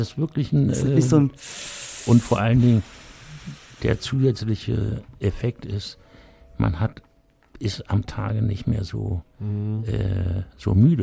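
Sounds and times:
speech: 0.0s - 6.0s, 6.6s - 11.0s
voice imitating the hiss of a sleep apnea breathing mask: 1.3s - 4.1s.

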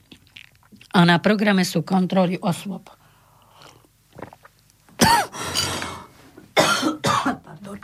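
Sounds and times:
speech: 1.0s - 3.0s
person coughing harshly: 5.0s - 7.5s.

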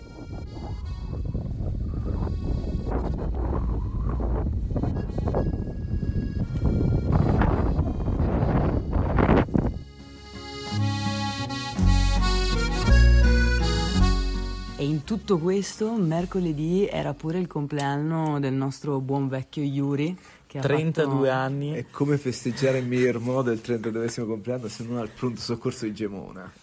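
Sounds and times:
music: 0.0s - 3.4s, 4.7s - 17.4s
strong mountain wind on a summit buffeting the microphone: 0.0s - 9.9s
speech: 15.1s - 26.6s.

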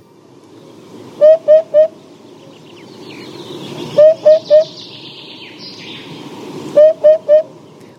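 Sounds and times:
faint hiss: 0.0s - 7.9s
Eurasian hoopoe calling its soft hollow triple hoot: 0.7s - 4.8s, 6.7s - 7.6s.

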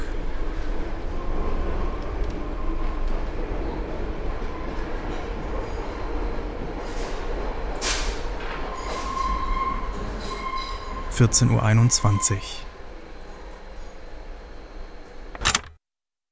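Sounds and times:
train rumbling into a siding: 0.0s - 15.3s
sharp metallic squeals of a train: 8.6s - 11.1s
speech: 11.2s - 12.6s.

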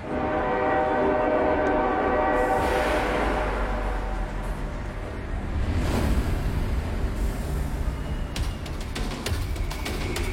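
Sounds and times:
train horn long sustained blast: 0.0s - 5.1s
train rumbling with roaring rail noise: 0.0s - 10.3s.

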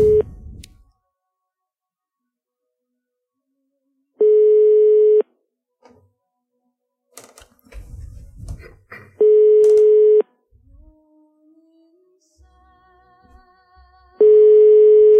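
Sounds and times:
telephone busy signal during call attempt: 0.0s - 0.3s, 4.2s - 5.2s, 9.2s - 10.2s, 14.2s - 15.1s
telephone handset noise: 9.6s - 10.0s.

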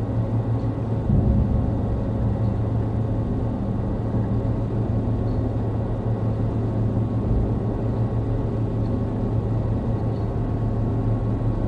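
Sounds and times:
very low frequency mechanical noise: 0.0s - 11.6s.

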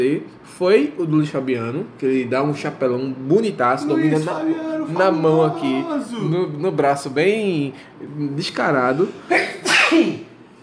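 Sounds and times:
speech: 0.0s - 10.3s
loud sneeze: 9.2s - 10.4s.

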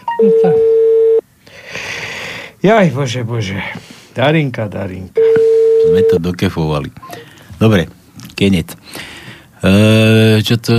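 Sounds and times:
telephone ringing tone of an unanswered phone call: 0.0s - 1.2s, 5.2s - 6.2s
speech: 0.2s - 0.8s, 2.6s - 10.7s.

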